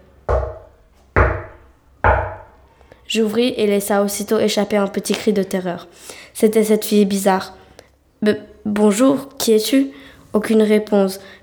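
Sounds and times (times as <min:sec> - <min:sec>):
heavy knocks on a front door: 0:00.3 - 0:02.6
speech: 0:03.1 - 0:07.6, 0:08.2 - 0:11.4.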